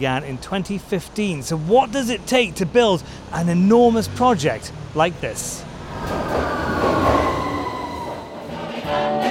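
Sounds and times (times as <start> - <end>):
speech: 0.0 - 6.9
London Underground Northern Line tube train rumble at Nine Elms station: 0.8 - 9.2
tube train wheels clacking over the rails: 5.6 - 8.3.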